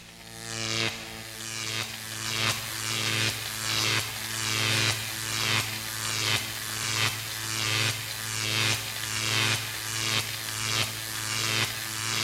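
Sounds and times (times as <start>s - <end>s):
electricity: 0.0s - 12.2s.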